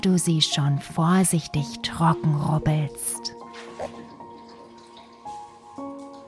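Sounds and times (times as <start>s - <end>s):
speech: 0.0s - 4.0s
water dripping in a tub: 1.0s - 6.2s
bathwater draining from a tub: 1.8s - 6.2s.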